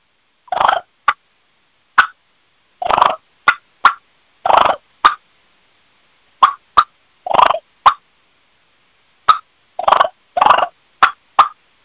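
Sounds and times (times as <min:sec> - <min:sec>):
Eastern or Osceola wild turkey hen giving deep raspy clucks: 0:00.5 - 0:01.2, 0:02.0 - 0:02.2, 0:02.8 - 0:05.2, 0:06.4 - 0:08.0, 0:09.3 - 0:11.6.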